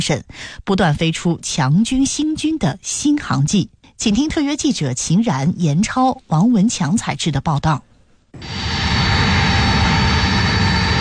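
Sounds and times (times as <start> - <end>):
speech: 0.0 - 8.7
Y-20 transport aircraft jet engines roaring while landing on runway: 8.4 - 10.9.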